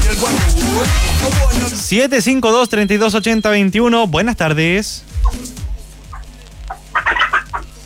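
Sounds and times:
speech: 0.1s - 5.5s
hens clucking on a roof: 6.1s - 7.8s.

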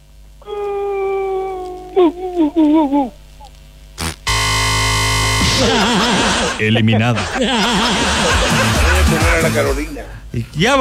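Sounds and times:
person imitating a werewolf howl: 0.4s - 3.1s
laughter: 2.0s - 3.2s, 5.4s - 9.9s
speech: 2.0s - 3.2s, 5.6s - 10.7s
loud hissing noise: 4.0s - 10.3s.

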